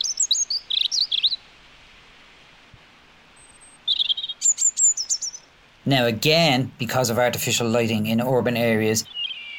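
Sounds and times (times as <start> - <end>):
male European robin singing: 0.0 - 1.5, 3.3 - 9.5
soft hiss: 0.0 - 9.5
speech: 5.8 - 9.2.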